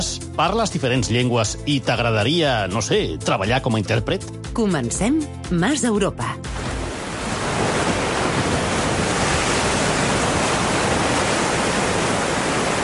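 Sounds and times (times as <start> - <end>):
speech: 0.0 - 6.5
sea waves breaking: 6.4 - 12.8.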